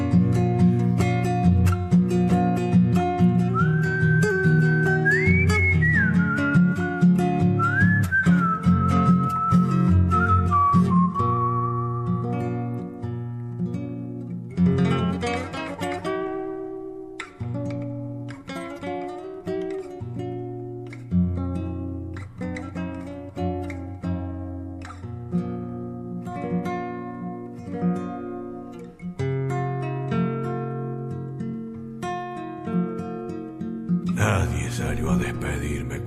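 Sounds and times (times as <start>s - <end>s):
steady instrumental accompaniment: 0.0s - 36.0s
person whistling a tune: 3.5s - 12.4s.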